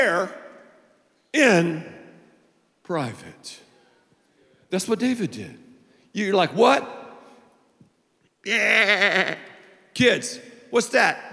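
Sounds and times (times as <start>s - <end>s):
speech: 0.0s - 0.4s, 1.3s - 1.9s, 2.9s - 3.6s, 4.7s - 7.0s, 8.4s - 11.3s
weak wavering sheep bleat: 8.7s - 9.5s.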